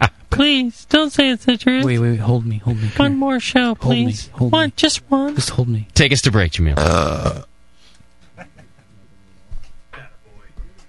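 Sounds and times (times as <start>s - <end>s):
speech: 0.4s - 7.5s
loud burp: 6.8s - 7.5s
lower guttural croaks and murmuring sounds: 6.8s - 7.5s.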